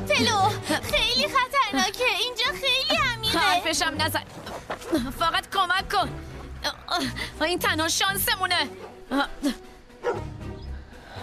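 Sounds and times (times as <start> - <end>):
speech: 0.2 - 9.6
dog barking during a hurried flood escape: 10.0 - 10.3.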